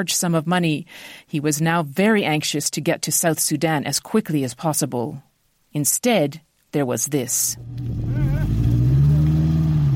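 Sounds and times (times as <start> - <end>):
speech: 0.0 - 8.7
engine of a pickup truck crowded with travelers droning: 7.6 - 9.9.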